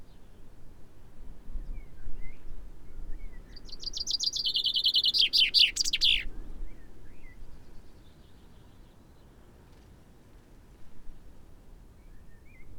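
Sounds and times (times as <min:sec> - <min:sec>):
common chaffinch Fringilla coelebs song: 0:03.2 - 0:06.4
faint bird calls: 0:03.5 - 0:06.3.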